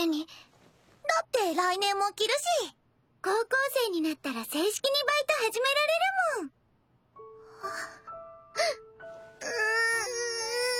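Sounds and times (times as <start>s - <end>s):
speech: 1.4s - 6.6s, 7.6s - 8.0s
girl crying happy tears: 7.5s - 10.7s.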